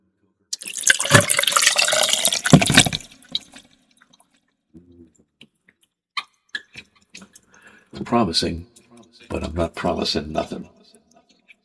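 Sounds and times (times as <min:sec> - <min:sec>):
rum splashing over ice into a glass for a fizz cocktail: 0:00.6 - 0:03.6
speech: 0:08.1 - 0:08.7, 0:09.6 - 0:10.8.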